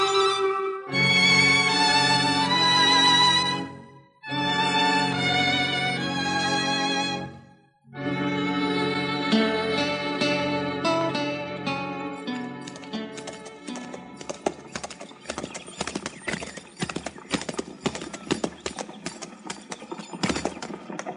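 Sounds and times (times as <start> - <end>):
music playing: 0.0 - 15.0
horse hooves clopping at a hitch rack: 12.2 - 21.1.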